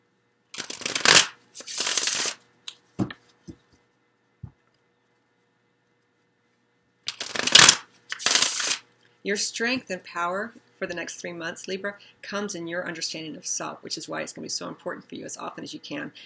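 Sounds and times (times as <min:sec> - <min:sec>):
tarot cards shuffled in brisk riffling bursts: 0:00.6 - 0:02.4, 0:07.1 - 0:08.8
speech: 0:09.2 - 0:16.2.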